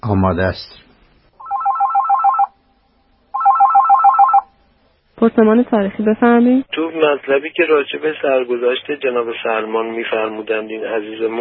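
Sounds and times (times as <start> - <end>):
speech: 0.0 - 0.9, 5.2 - 11.3
telephone ringing with electronic warbling trill: 1.4 - 2.6, 3.3 - 4.6.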